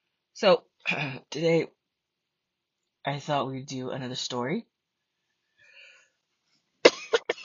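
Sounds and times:
speech: 0.4 - 1.8, 3.0 - 4.7
person coughing harshly: 0.9 - 1.2, 6.9 - 7.4
faint breathy rasp: 5.4 - 6.2.

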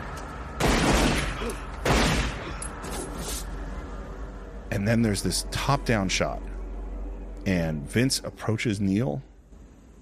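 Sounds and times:
gunfire from a crime film shootout scene: 0.6 - 2.5
speech: 4.8 - 6.5, 7.5 - 9.3.

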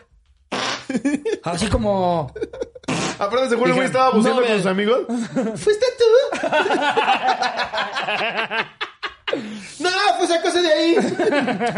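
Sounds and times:
person making a mouth fart noise imitating herring: 0.5 - 1.1, 2.8 - 3.4
speech: 0.9 - 2.6, 3.2 - 11.7
laughter: 5.1 - 9.8, 10.8 - 11.7.

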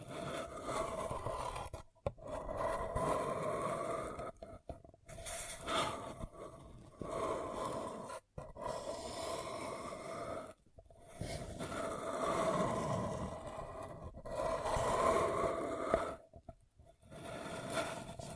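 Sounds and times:
crinkly scraping and rubbing on a paper cup: 0.0 - 18.3.

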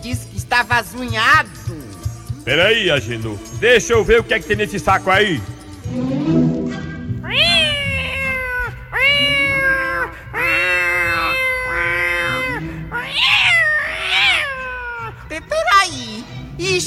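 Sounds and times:
speech: 0.0 - 6.4
cat meowing in drawn-out plaintive cries: 7.2 - 15.2.

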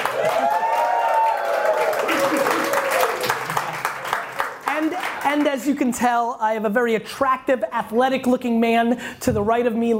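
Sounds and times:
people whooping and cheering: 0.0 - 3.9
small live studio audience applauding: 0.0 - 5.7
speech: 5.4 - 9.9.

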